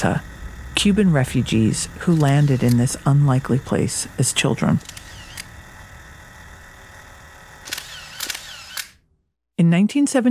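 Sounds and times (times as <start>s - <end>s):
speech: 0.0s - 5.0s, 9.8s - 10.2s
faint mechanical hum: 0.0s - 10.2s
35mm camera shutter snapping photos: 2.1s - 2.8s, 4.8s - 5.5s, 7.6s - 9.0s.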